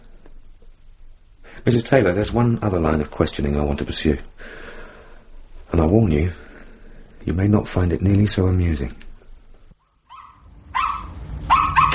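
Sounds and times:
speech: 1.6s - 4.6s, 5.8s - 6.4s, 7.2s - 9.0s
dog whining: 9.8s - 11.9s.

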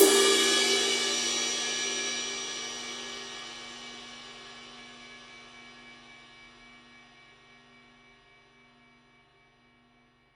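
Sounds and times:
edge of Paiste 22-inch 2002 ride cymbal: 0.0s - 4.6s.

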